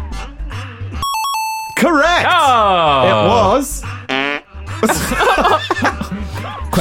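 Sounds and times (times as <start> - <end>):
speech: 1.8 - 3.8, 4.8 - 6.7
loud wet sputtering fart: 4.1 - 4.5
laughter: 4.7 - 6.7.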